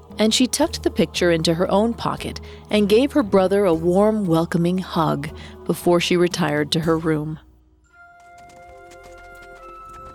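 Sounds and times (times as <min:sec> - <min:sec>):
speech: 0:00.2 - 0:07.4
horse hooves clip-clopping: 0:07.9 - 0:10.1.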